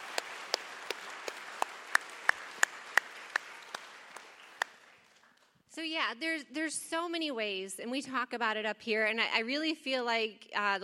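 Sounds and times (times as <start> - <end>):
audience applause: 0.0 - 5.4
one pair of hands clapping: 0.0 - 5.6
speech: 5.8 - 10.8.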